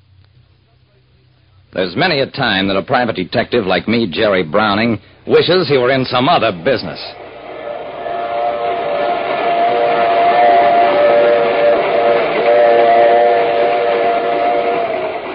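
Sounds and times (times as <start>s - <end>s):
roar and rattle of a train crossing the prairie heard from its baggage car: 0.5s - 15.3s
speech: 1.7s - 7.2s
train whistle blowing: 6.4s - 15.3s.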